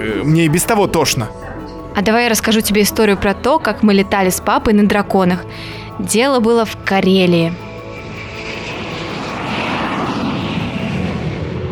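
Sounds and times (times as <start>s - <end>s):
speech: 0.0s - 1.4s, 2.0s - 7.6s
airliner engine drone: 5.4s - 11.7s.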